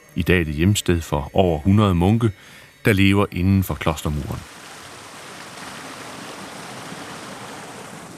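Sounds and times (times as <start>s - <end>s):
speech: 0.2s - 4.6s
water flowing from a spring: 3.8s - 8.1s.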